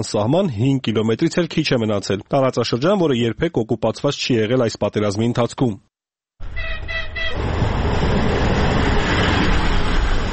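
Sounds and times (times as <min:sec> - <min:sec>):
speech: 0:00.0 - 0:07.5
brief harmonic horn-like tone: 0:06.4 - 0:07.4
electric commuter train pulling into a small-town railway station: 0:06.4 - 0:10.3.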